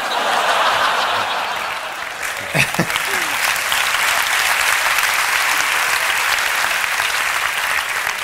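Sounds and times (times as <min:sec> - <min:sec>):
crowd applause: 0:00.0 - 0:08.2
faint chuckles: 0:02.3 - 0:03.5.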